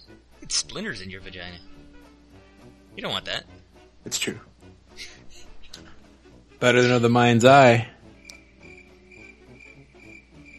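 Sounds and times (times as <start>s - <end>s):
speech: 0.1s - 1.8s, 3.0s - 5.1s, 6.6s - 7.9s
crickets chirping: 8.1s - 10.5s.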